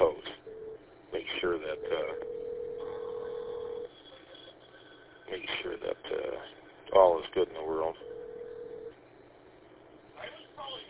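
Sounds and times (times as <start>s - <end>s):
steady telephone tone: 0.4s - 0.8s, 1.7s - 5.0s, 8.0s - 8.9s
thin hissy phone line: 1.3s - 6.0s
telephone dialing tones: 1.8s - 3.9s, 8.0s - 8.9s
speech: 7.0s - 8.1s.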